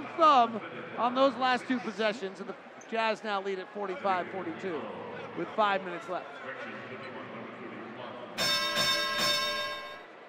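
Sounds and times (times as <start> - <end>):
speech: 0.2 - 7.2
bell rung at a basketball game for a 30-point milestone: 8.4 - 10.2.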